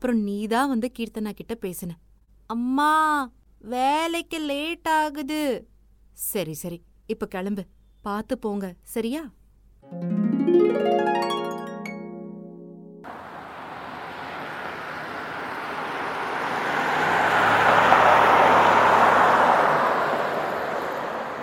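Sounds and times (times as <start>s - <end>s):
speech: 0.0s - 11.3s
roadside traffic rumble at a bus stop: 13.1s - 21.4s
vehicle passing by: 13.1s - 21.4s.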